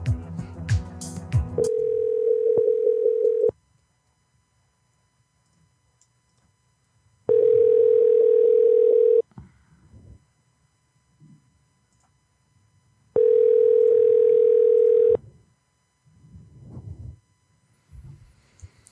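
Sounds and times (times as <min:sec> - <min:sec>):
ringback tone on an outgoing telephone call: 0:01.6 - 0:03.5, 0:07.3 - 0:09.2, 0:13.2 - 0:15.2.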